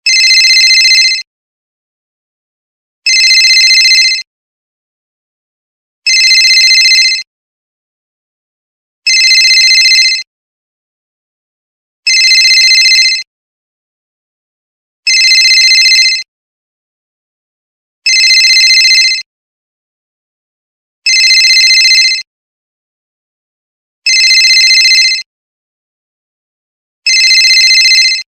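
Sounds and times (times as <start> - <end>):
old office phone ringtone: 0.0 - 1.3, 3.1 - 4.3, 6.1 - 7.3, 9.1 - 10.3, 12.1 - 13.3, 15.1 - 16.3, 18.1 - 19.3, 21.1 - 22.3, 24.1 - 25.3, 27.1 - 28.3.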